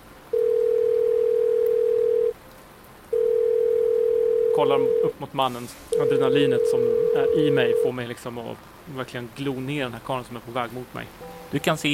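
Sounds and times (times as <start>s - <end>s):
faint hiss: 0.0s - 11.9s
electronic ringback tone from an unanswered mobile phone call: 0.3s - 2.3s, 3.2s - 5.1s, 6.0s - 7.9s
speech: 4.6s - 11.9s.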